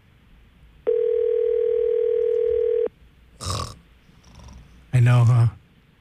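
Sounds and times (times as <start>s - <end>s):
outgoing phone call ringback tone from a computer to a cell phone: 0.9s - 2.9s
speech: 5.0s - 5.6s.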